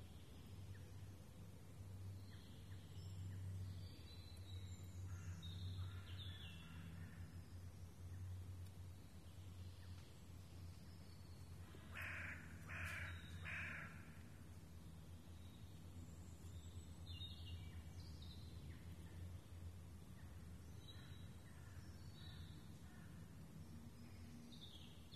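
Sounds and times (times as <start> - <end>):
steady low rumbling background noise: 0.0 - 25.1
ravens calling in the Rambouillet forest, France: 5.1 - 7.3, 11.6 - 14.4.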